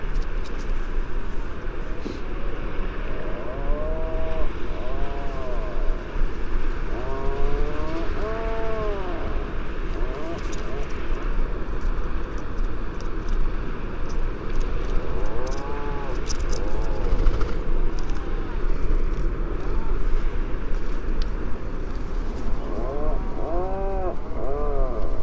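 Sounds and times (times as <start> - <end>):
continuous loud rumbling background: 1.0 - 25.2
Atlantic puffin Fratercula arctica groaning and moaning: 3.2 - 5.9, 6.9 - 11.3, 15.3 - 17.4, 22.6 - 25.2.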